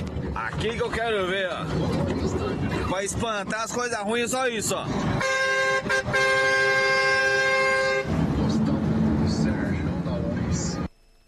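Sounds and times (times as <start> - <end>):
dense rumbling road or engine noise: 0.0 - 10.9
speech: 0.4 - 6.8
loud sustained truck horn blaring: 5.1 - 8.4.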